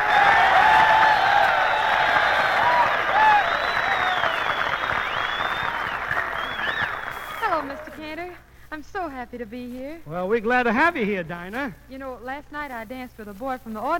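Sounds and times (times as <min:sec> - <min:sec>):
scattered cheers and whistles: 0:00.0 - 0:08.0
large radio audience applauding: 0:00.0 - 0:08.2
speech: 0:10.2 - 0:13.9.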